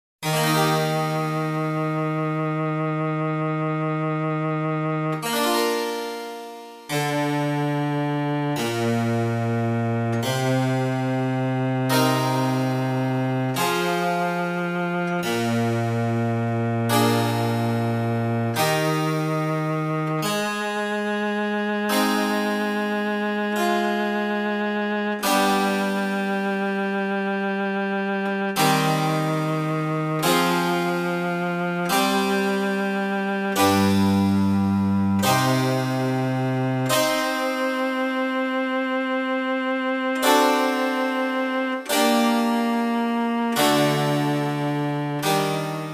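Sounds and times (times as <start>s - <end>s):
oboe sonata: 0.2s - 45.9s.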